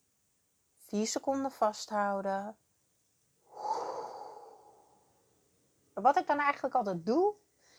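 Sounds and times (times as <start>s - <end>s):
speech: 0.9s - 2.6s, 6.0s - 7.4s
slow deep breath in: 3.5s - 5.1s.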